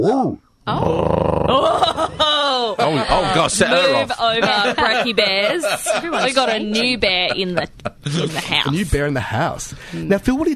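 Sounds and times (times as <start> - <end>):
speech: 0.0 - 10.5
person imitating a long rumbling dog growl: 0.7 - 2.5
laughter: 1.5 - 8.8.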